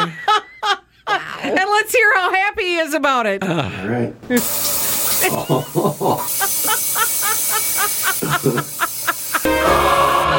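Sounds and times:
laughter: 0.0 - 1.4, 5.1 - 10.2
speech: 1.8 - 6.4, 8.3 - 8.9
bidet-style toilet seat attachment spraying water: 4.4 - 10.2.

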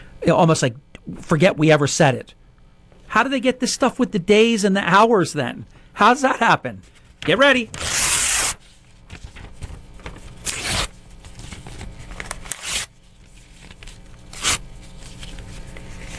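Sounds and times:
speech: 0.2 - 2.4, 3.1 - 8.0
paper ripping: 7.2 - 16.1.

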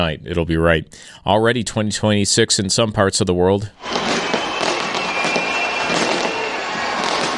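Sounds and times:
speech: 0.0 - 4.3
fireworks display exploding: 3.8 - 7.3.

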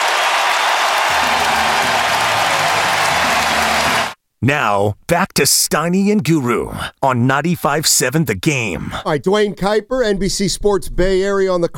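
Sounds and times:
large baseball stadium crowd cheering and clapping: 0.0 - 4.2
people shouting in a baseball stadium crowd: 1.1 - 4.2
speech: 4.4 - 11.7.

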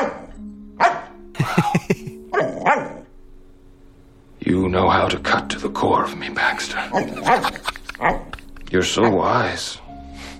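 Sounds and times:
dog barking with loud yips and woofs: 0.0 - 1.2, 2.3 - 3.1, 6.9 - 8.4
laughter: 1.4 - 2.2, 7.0 - 8.8
speech: 4.8 - 9.8.

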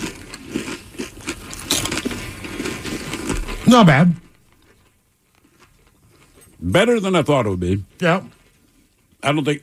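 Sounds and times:
crunching of Doritos tortilla chips and candy eaten together: 0.0 - 9.6
speech: 3.7 - 4.2, 6.6 - 8.4, 9.2 - 9.6.

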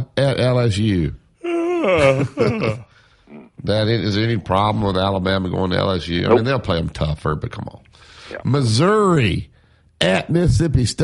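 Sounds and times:
speech: 0.2 - 1.2, 1.8 - 2.9, 3.6 - 11.0
person yawning: 1.4 - 3.6.

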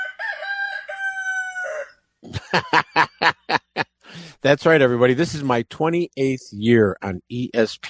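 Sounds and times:
recorded rooster crow played on the radio: 0.0 - 2.0
speech: 2.2 - 2.9, 4.4 - 7.8
laughter: 2.2 - 4.3.

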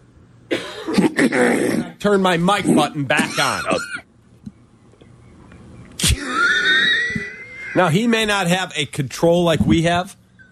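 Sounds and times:
person coughing: 0.5 - 2.0, 3.1 - 4.0, 6.0 - 6.9
speech: 1.3 - 4.0, 7.8 - 10.2.

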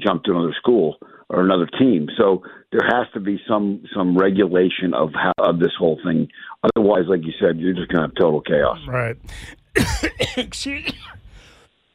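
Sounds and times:
speech: 0.0 - 11.2
person coughing after choking on a drink: 9.2 - 11.2
rasping throat clearing after choking on a drink: 9.2 - 11.2.

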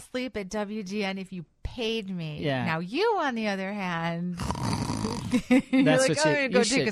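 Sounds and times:
speech: 0.1 - 6.8
person imitating a woman's snoring with throaty snorts: 4.4 - 5.4.

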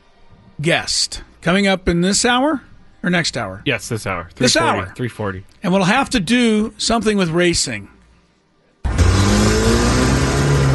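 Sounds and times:
speech: 0.6 - 8.0
car accelerating hard and speeding away from a courthouse: 8.8 - 10.7.

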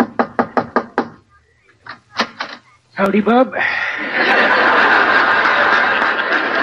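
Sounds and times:
knocking on the wooden door of an old prospector's house: 0.0 - 1.2
speech: 3.0 - 4.4
laughter: 3.9 - 6.6.

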